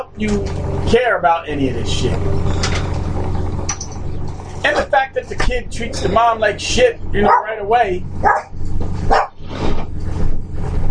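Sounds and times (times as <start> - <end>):
low constant hum: 0.0 - 10.8
speech: 0.1 - 2.7, 4.6 - 8.5
dog barking at an intruder breaking in through a window: 7.2 - 7.5, 8.2 - 9.4.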